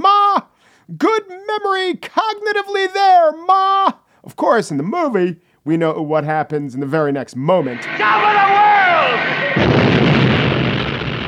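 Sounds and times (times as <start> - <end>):
speech: 0.9 - 9.7
huge explosion in a movie scene: 7.7 - 11.2.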